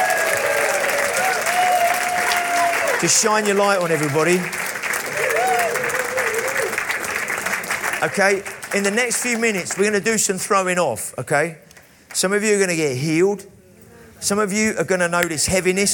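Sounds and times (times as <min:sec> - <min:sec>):
large church audience giving a standing round of applause: 0:00.0 - 0:10.1
speech: 0:03.0 - 0:04.6, 0:08.0 - 0:11.6, 0:12.2 - 0:13.6, 0:14.2 - 0:15.9.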